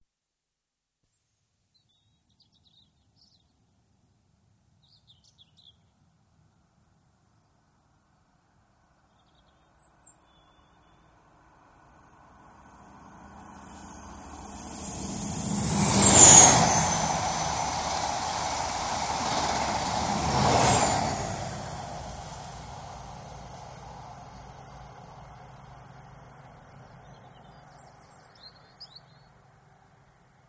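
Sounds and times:
Inter City 125 train high speed pass: 11.4 - 28.6.

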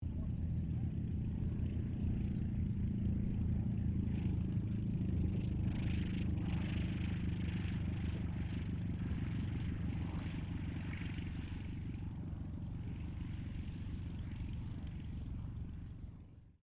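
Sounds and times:
1939 Ryan STM-S2 aircraft landing: 0.0 - 16.4.

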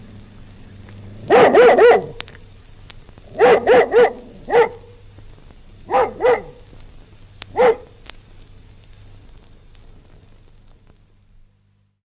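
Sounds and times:
faint low hum: 0.0 - 12.0
collie barking: 1.2 - 2.2, 3.3 - 5.0, 5.9 - 6.7, 7.5 - 8.0.

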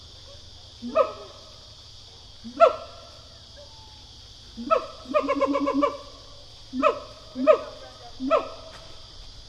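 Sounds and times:
siamang pair barking: 0.8 - 1.4, 2.4 - 4.0, 4.6 - 8.6.

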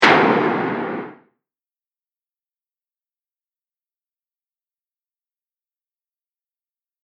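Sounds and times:
heavyweight bomb explosion: 0.0 - 1.2.

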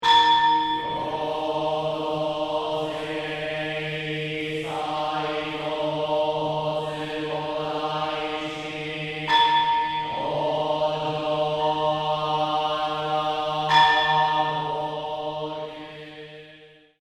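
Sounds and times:
temple bells in a temple in Tokyo: 0.0 - 3.6, 8.1 - 16.0
Buddhist monks chanting in a temple in Tokyo: 0.0 - 17.0.

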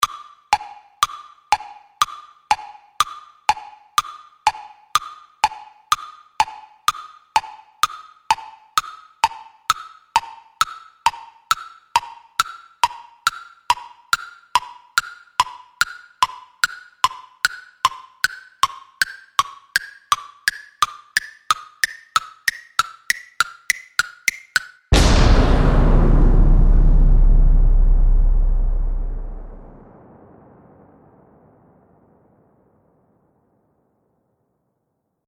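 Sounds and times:
comic style countdown tick tocking of time bomb clock: 0.0 - 24.9
comic time bomb explosion: 24.9 - 33.5.

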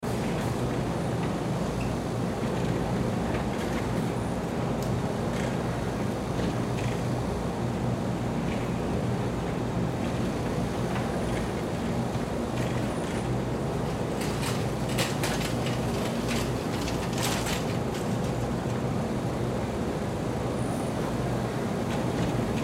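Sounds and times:
vending machines at a store entrance: 0.0 - 22.6
shopping carts at a store entrance: 12.5 - 18.6.

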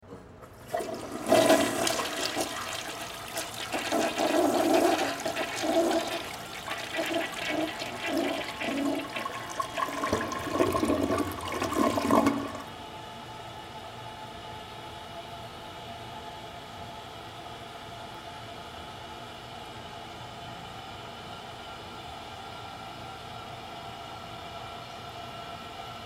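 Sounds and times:
long toilet flush in a public bathroom stall: 0.4 - 12.8.

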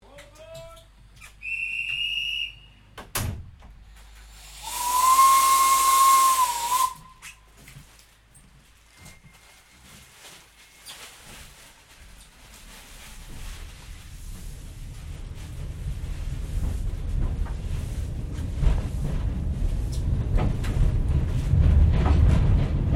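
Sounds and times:
Kraus 0-2-0 steam locomotive carriage interior from 1906: 0.0 - 22.9.

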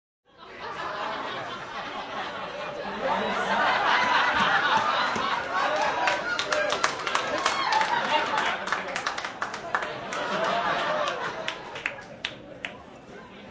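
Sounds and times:
large group of 20-30 people laughing live: 0.3 - 12.3
applause from large group of 20-30 people: 3.7 - 12.8.

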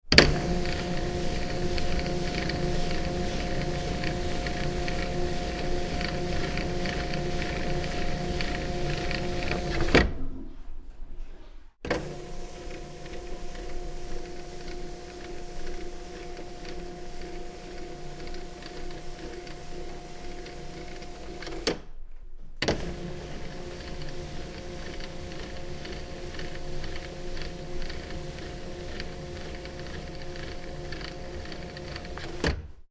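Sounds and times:
motorized electronic display board moving in an office: 0.1 - 10.2, 11.9 - 21.8, 22.6 - 32.6.

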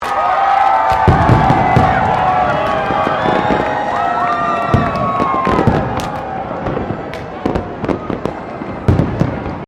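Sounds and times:
New Year's Eve fireworks: 0.0 - 9.6
crowd cheering at New Year's Eve fireworks: 0.0 - 9.6.

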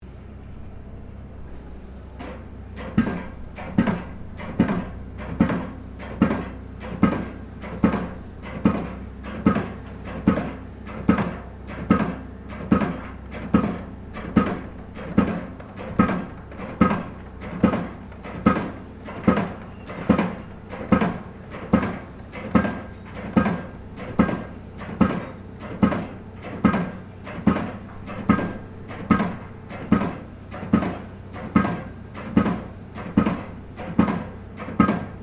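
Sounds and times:
construction site pile driver operating: 2.1 - 35.2.

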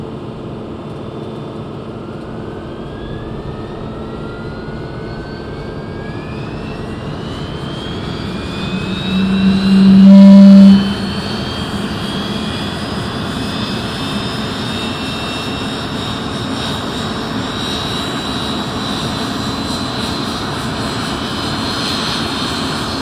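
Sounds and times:
BAC Jet Provost T2 jet aircraft startup generator: 0.2 - 22.9.

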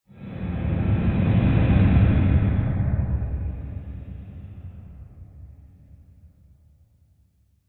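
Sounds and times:
airy rushing rumble swell: 0.1 - 5.6.

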